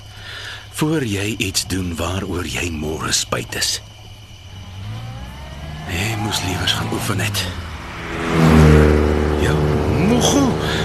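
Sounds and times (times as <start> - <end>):
broad rushing road noise: 0.0 - 10.8
speech: 0.8 - 3.9, 6.2 - 8.4, 10.1 - 10.8
car speeding past on a road: 4.5 - 10.8.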